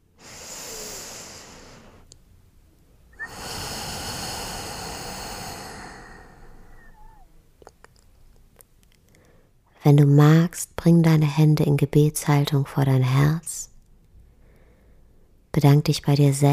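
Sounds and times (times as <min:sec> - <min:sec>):
slow deep breaths during a guided meditation: 0:00.0 - 0:02.2, 0:03.2 - 0:07.4, 0:09.0 - 0:09.7, 0:14.3 - 0:15.4
speech: 0:09.8 - 0:13.7, 0:15.6 - 0:16.5.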